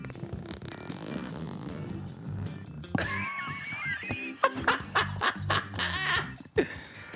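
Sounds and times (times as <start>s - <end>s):
zipper being unzipped: 0.0s - 2.8s
people laughing: 3.0s - 6.8s.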